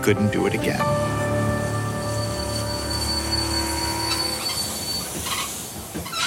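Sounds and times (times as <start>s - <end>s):
speech: 0.0s - 1.1s
train rumbling as it pulls into a station: 0.0s - 6.2s
high metallic train wheel squeals: 1.6s - 6.2s.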